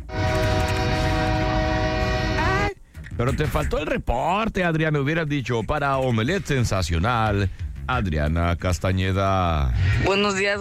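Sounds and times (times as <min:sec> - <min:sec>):
train horn blast: 0:00.0 - 0:02.8
speech: 0:03.2 - 0:10.5.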